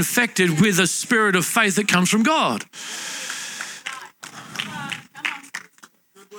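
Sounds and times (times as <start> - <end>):
speech: 0.0 - 3.3
audience clapping: 2.9 - 6.0.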